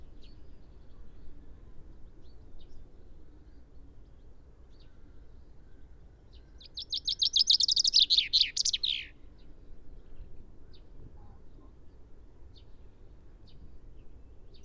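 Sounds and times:
common chaffinch Fringilla coelebs song: 6.6 - 9.2.

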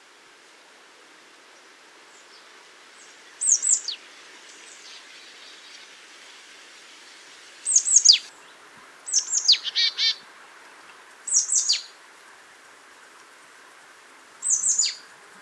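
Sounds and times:
Marsh tit Poecile palustris calling: 7.7 - 8.3, 9.1 - 10.2, 11.3 - 11.9, 14.4 - 15.1.

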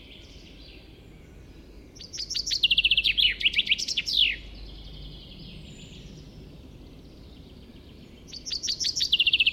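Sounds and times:
faint birdsong: 0.0 - 9.5
common chaffinch Fringilla coelebs song, rattling descending trill: 2.0 - 9.5.

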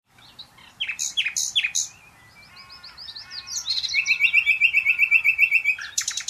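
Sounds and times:
Common nightingale Luscinia megarhynchos singing chips, fluty whistles and trills: 0.1 - 6.2.

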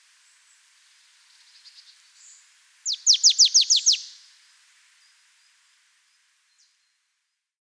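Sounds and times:
marsh tit Poecile palustris calling: 2.9 - 4.1.

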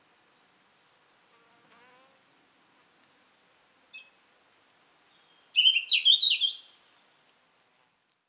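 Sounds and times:
European robin singing: 3.7 - 6.8.

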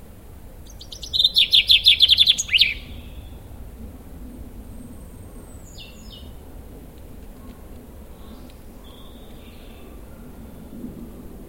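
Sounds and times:
Fringilla coelebs common chaffinch singing: 0.6 - 3.5, 5.0 - 6.4, 7.9 - 10.5.

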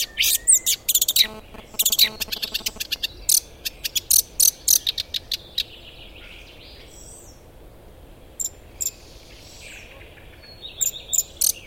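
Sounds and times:
Eurasian blackcap Sylvia atricapilla ticking calls: 0.0 - 5.7, 10.8 - 11.6.

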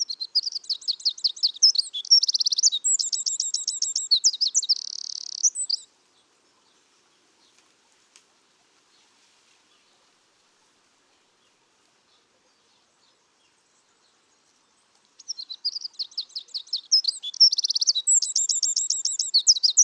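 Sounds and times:
Eurasian wren Troglodytes troglodytes song with buzzy trill: 0.2 - 5.8, 15.2 - 19.8.

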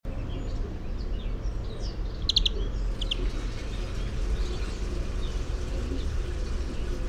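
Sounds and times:
dull background rumble: 0.1 - 7.0
European greenfinch Chloris chloris call: 2.1 - 6.2.

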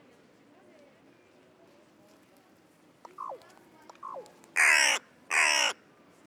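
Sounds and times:
carrion crow cawing: 4.0 - 5.8.

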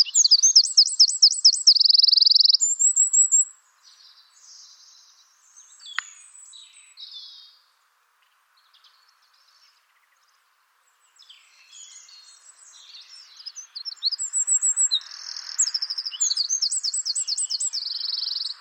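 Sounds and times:
faint chirps: 0.0 - 7.5, 11.4 - 18.5
Eurasian wren song with zigzag trill and rattling buzz: 0.0 - 7.6, 11.1 - 18.5.

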